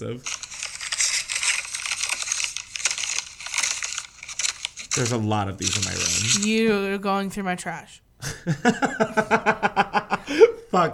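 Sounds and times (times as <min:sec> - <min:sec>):
speech: 0:00.0 - 0:00.5, 0:05.0 - 0:10.9
paper utility bill being torn and crumpled: 0:00.0 - 0:06.7.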